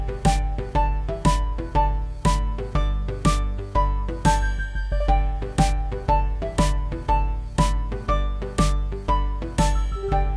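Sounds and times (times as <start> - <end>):
dance music loop from a video game: 0.0 - 10.3.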